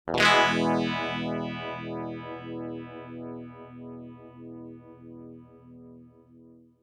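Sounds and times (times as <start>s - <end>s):
strum through two-stage effect with full regeneration at zero rate: 0.1s - 4.0s.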